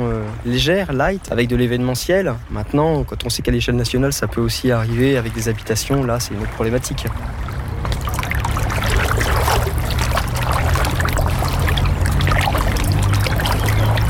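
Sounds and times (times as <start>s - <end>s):
water sloshing and trickling on a flooded path: 0.0s - 14.0s
speech: 0.4s - 7.5s
footsteps wading through water on a flooded path: 4.4s - 14.0s
low hum: 6.4s - 14.0s.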